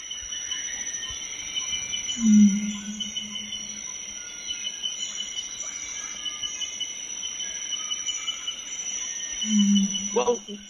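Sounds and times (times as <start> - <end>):
many crickets trilling in a night forest: 0.0 - 10.6
speech: 2.2 - 2.7, 10.2 - 10.6.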